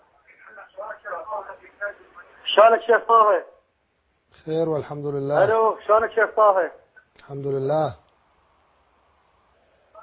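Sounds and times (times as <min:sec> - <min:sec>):
television sound carried over a phone line: 0:00.0 - 0:03.6, 0:05.3 - 0:07.2
speech: 0:02.6 - 0:03.5, 0:04.4 - 0:08.0.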